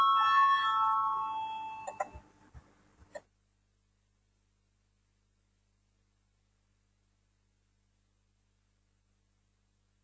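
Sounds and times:
voting bell ringing in a parliament chamber: 0.0 - 2.1.

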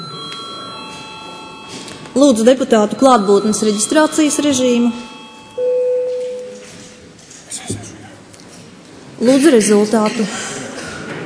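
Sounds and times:
chamber bell in the Latvian Saeima ringing: 0.0 - 7.2
speech: 2.2 - 5.1, 9.2 - 10.4.

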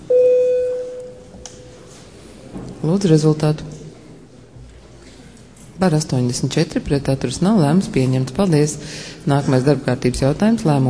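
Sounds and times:
parliament voting bell signal electronic tone: 0.0 - 1.8
speech: 2.8 - 3.7, 5.8 - 10.8.

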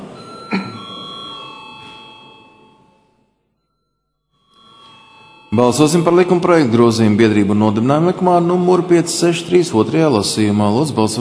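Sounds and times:
parliament chamber bell ringing before a vote: 0.2 - 7.3
speech: 5.6 - 11.1.

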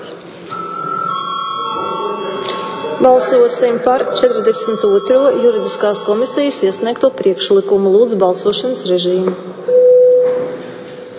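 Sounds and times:
bell rung in a parliament chamber for lack of quorum: 0.5 - 7.6
speech: 3.0 - 9.8.

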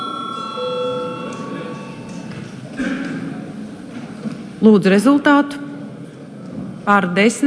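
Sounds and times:
electric voting bell ringing in parliament chamber: 0.0 - 2.5
murmur of people in a large room: 0.0 - 7.4
speech: 4.6 - 5.6, 6.9 - 7.4.

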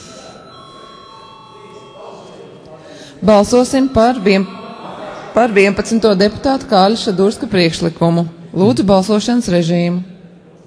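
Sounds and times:
parliamentary chamber electric bell ringing: 0.0 - 2.6, 3.2 - 7.5
murmuring chatter in a chamber: 0.0 - 10.6
speech: 3.2 - 4.6, 5.4 - 10.1.

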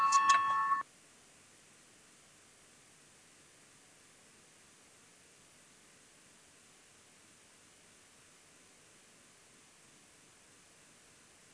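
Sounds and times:
parliament voting signal bell ringing with a clear electronic tone: 0.0 - 0.8.

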